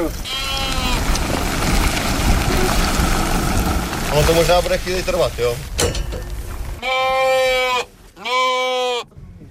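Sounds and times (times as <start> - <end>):
faint rumbling noise: 0.0 - 8.5
sheep bleating in a trailer: 0.2 - 1.0, 6.8 - 9.1
speech: 4.1 - 6.0.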